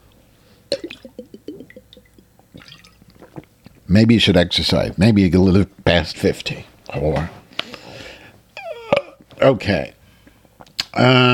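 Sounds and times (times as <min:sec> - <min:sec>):
water sloshing and glugging inside a water bottle: 0:00.7 - 0:03.5
speech: 0:03.9 - 0:07.4, 0:09.4 - 0:10.0, 0:11.0 - 0:11.3.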